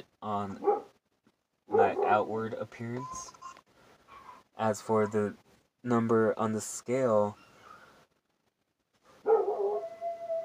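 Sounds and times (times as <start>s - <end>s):
speech: 0.2s - 0.8s, 2.1s - 3.4s, 4.6s - 7.4s
dog howling: 9.3s - 10.4s.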